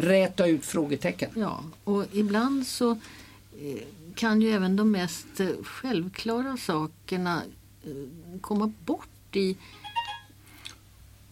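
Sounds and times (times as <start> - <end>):
speech: 0.0 - 9.8
mobile phone ringing with bright chirpy electronic tones: 9.7 - 10.3.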